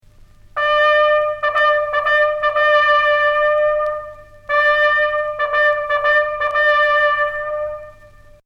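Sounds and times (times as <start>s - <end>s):
regulation military bugle call: 0.6s - 8.4s.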